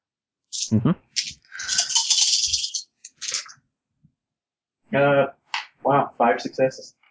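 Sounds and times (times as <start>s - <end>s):
handful of dice clattering and rolling across a hard surface: 0.6s - 3.5s
speech: 0.7s - 1.3s, 4.9s - 5.4s, 6.2s - 7.0s.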